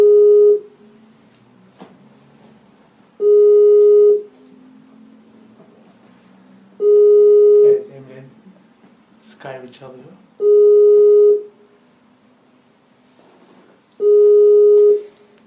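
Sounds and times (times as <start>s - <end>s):
outgoing phone call ringback tone: 0.0s - 0.7s, 3.2s - 4.3s, 6.8s - 7.8s, 10.4s - 11.5s, 14.0s - 15.2s.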